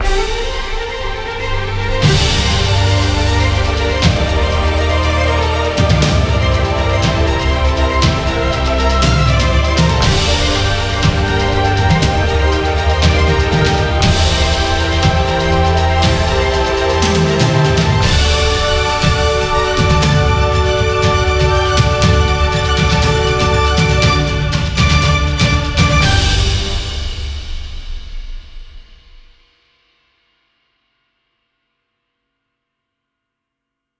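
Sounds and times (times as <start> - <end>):
big win music: 0.0 - 27.8.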